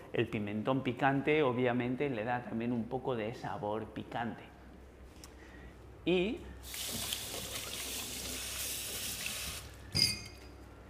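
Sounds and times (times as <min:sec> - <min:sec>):
speech: 0:00.1 - 0:04.5, 0:06.0 - 0:07.2
water pouring into a cooking pot: 0:06.6 - 0:09.8.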